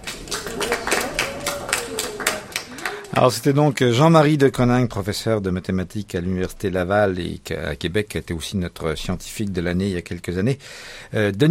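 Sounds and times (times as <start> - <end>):
audience applauding: 0.0 - 3.4
speech: 3.2 - 11.4.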